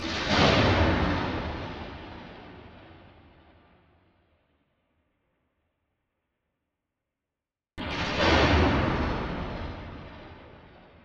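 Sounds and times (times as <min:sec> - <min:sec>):
thunder: 0:00.0 - 0:03.7, 0:07.8 - 0:11.0.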